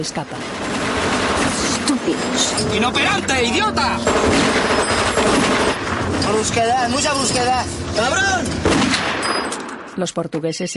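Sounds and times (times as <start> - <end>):
gunshots hitting a car: 0.0 - 6.8, 8.6 - 9.9
speech: 0.0 - 8.8, 10.0 - 10.7.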